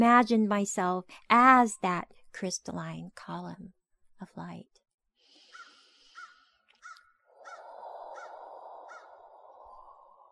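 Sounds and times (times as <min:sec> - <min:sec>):
speech: 0:00.0 - 0:04.8
crow cawing from a treetop: 0:05.5 - 0:09.8.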